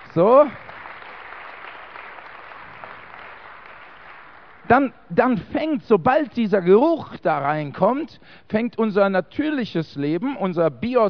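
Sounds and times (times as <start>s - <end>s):
crowd applauding: 0.0s - 4.7s
speech: 0.2s - 0.7s, 4.7s - 11.0s.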